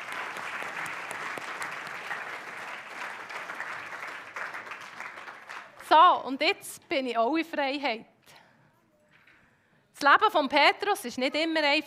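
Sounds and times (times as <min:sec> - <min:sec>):
audience applause: 0:00.0 - 0:05.8
speech: 0:05.9 - 0:08.1, 0:10.0 - 0:11.8.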